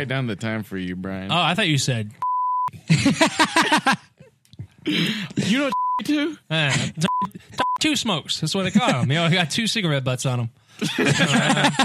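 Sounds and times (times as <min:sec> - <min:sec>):
speech: 0:00.0 - 0:04.1, 0:04.8 - 0:11.8
censor beep: 0:02.2 - 0:02.7, 0:05.7 - 0:06.0
laughter: 0:02.8 - 0:04.3, 0:10.8 - 0:11.8.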